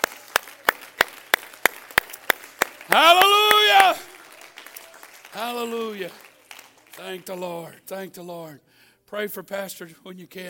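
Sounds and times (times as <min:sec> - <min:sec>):
audience clapping hands in praise: 0:00.0 - 0:07.7
speech: 0:02.9 - 0:03.2, 0:05.4 - 0:06.2, 0:07.0 - 0:10.4.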